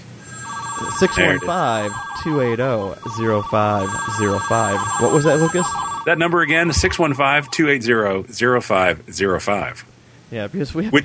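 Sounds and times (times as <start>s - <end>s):
telephone ringing with an electronic trill: 0.0s - 7.8s
speech: 1.0s - 11.0s.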